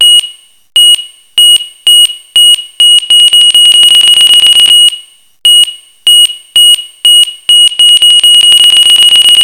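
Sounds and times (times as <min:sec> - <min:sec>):
time bomb alert ringtone: 0:00.0 - 0:09.4.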